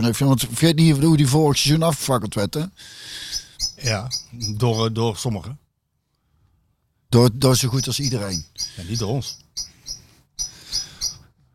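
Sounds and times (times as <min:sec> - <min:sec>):
speech: 0:00.0 - 0:05.6, 0:07.1 - 0:09.7
blackbird singing: 0:03.2 - 0:05.0, 0:07.2 - 0:11.3.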